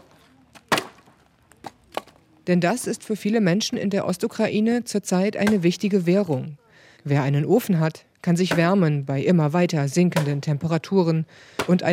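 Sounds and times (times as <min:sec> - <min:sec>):
wood being chopped outdoors for firewood in eastern Ukraine: 0:00.0 - 0:02.2
speech: 0:02.4 - 0:11.9.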